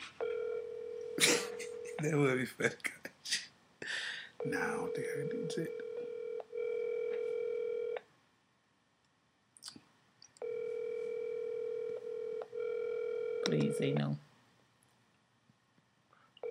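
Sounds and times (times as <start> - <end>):
phone ringback tone over a speakerphone: 0.2 - 2.2, 4.4 - 8.0, 10.4 - 14.2
people laughing: 1.2 - 1.7
speech: 2.0 - 3.0, 4.4 - 5.8, 13.6 - 14.2.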